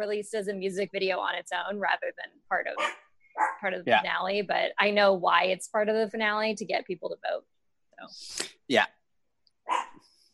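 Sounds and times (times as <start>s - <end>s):
speech: 0.0s - 9.0s
dog barking: 2.8s - 3.7s, 9.7s - 10.0s.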